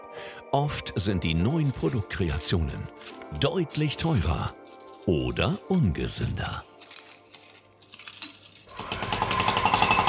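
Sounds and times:
speech: 0.1 - 6.7
jackhammer pounding at a construction site: 8.7 - 10.0.

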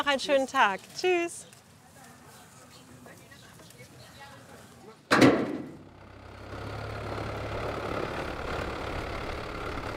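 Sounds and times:
speech: 0.1 - 1.5
sharp metallic clunk: 5.1 - 5.9
French-built oyster fishing boat engine idling: 5.8 - 9.9.

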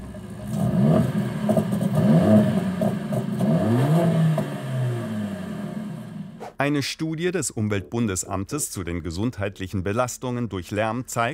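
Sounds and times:
high-performance Mercedes-AMG engine revving with throttle blips: 0.0 - 6.4
speech: 6.6 - 11.3.

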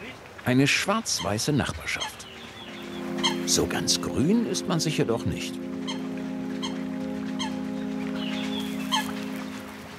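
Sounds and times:
speech: 0.4 - 2.2, 3.5 - 5.7
Eurasian coot pair calling at their nest: 1.1 - 3.9, 5.7 - 9.8.

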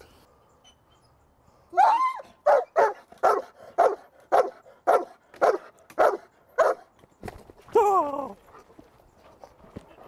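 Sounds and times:
dog barking during bite training with a protective sleeve: 2.4 - 6.9.

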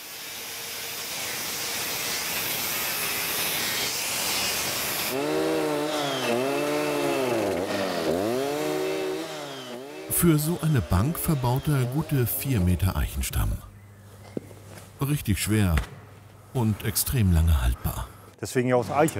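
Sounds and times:
chainsaw cutting through a thick oak trunk: 0.4 - 12.8
speech: 10.2 - 13.7, 15.0 - 19.1.

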